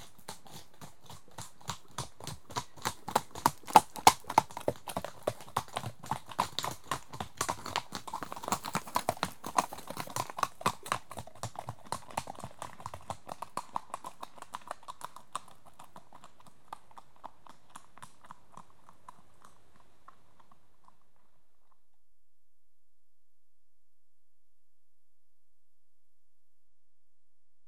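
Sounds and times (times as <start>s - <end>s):
horse hoofbeats: 0.0s - 21.8s.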